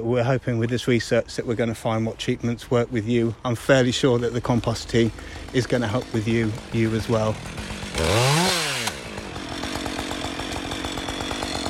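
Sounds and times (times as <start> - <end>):
speech: 0.0 - 8.6
chainsaw idling: 0.0 - 11.6
chainsaw cutting a fallen yew branch: 4.1 - 11.6.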